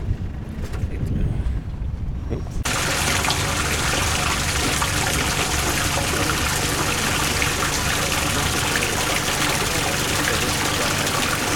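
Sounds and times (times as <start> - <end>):
low rumbling: 0.0 - 11.5
water gushing into a tank: 2.6 - 11.5.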